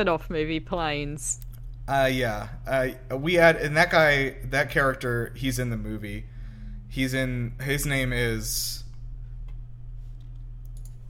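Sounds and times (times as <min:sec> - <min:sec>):
speech: 0:00.0 - 0:06.3, 0:06.9 - 0:08.8
steady low hum: 0:00.0 - 0:11.0
computer keyboard clicks as someone types a web search: 0:10.2 - 0:11.0.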